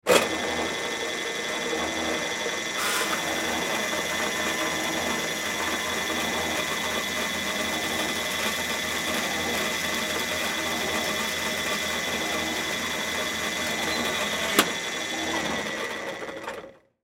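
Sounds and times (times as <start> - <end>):
industrial band saw running down: 0.0 - 16.8.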